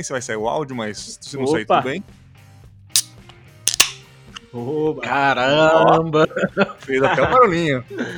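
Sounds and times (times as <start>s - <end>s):
speech: 0.0s - 2.2s, 4.5s - 8.1s
beer bottle cap being pried off: 3.0s - 4.1s
laughter: 5.5s - 8.1s.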